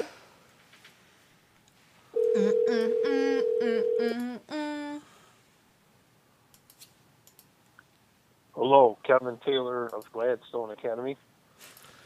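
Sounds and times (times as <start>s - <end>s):
phone line ringing on an outgoing call: 2.2s - 4.2s
speech: 9.1s - 11.7s.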